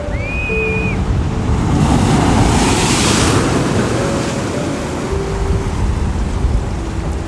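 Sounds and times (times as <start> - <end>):
high bird-like whistle: 0.0 - 1.0
ocean waves washing onto the shore: 0.0 - 7.2.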